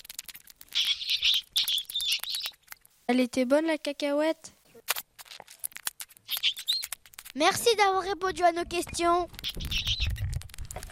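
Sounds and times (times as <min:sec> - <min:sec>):
pet gerbil squeaking in its cage in a classroom: 0:00.0 - 0:02.8, 0:04.7 - 0:07.6, 0:08.6 - 0:10.5
speech: 0:03.1 - 0:04.6, 0:07.4 - 0:09.7.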